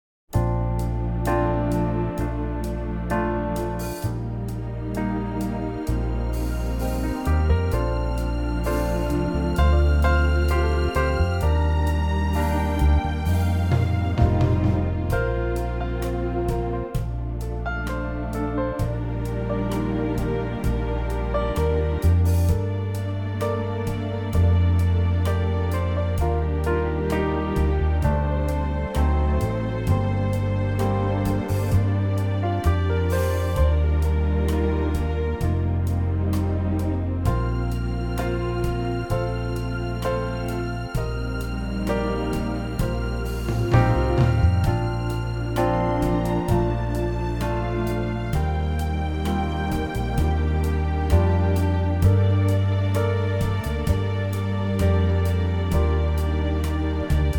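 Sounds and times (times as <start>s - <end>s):
orchestral piece in B flat: 0.4s - 57.3s.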